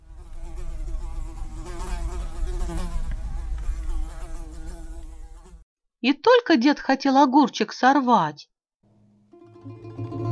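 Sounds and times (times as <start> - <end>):
several flies buzzing around a vegetable garden bed: 0.0 - 5.6
speech: 6.0 - 8.5.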